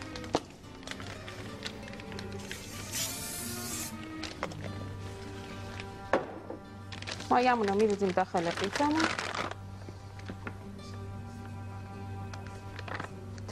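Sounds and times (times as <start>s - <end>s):
faint music: 0.0s - 13.5s
can of cooking oil spray hissing, greasing a baking mold: 2.4s - 4.1s
speech: 7.3s - 9.3s.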